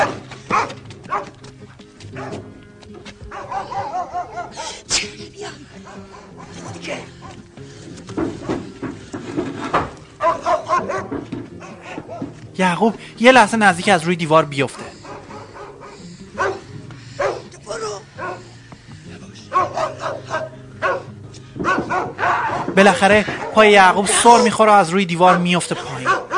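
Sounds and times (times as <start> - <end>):
dog barking: 0.0 - 1.4, 2.1 - 2.5, 3.3 - 4.9, 5.8 - 7.4, 10.2 - 12.4, 14.7 - 17.5, 18.2 - 18.6, 19.5 - 23.6, 25.3 - 26.3
speech: 12.6 - 14.8, 22.8 - 25.9.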